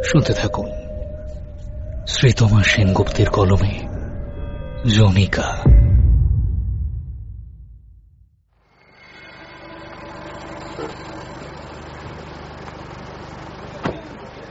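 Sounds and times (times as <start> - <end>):
speech: 0.1 - 0.8, 2.1 - 3.9, 4.8 - 5.8
bus pulling up and stopping: 9.5 - 14.4.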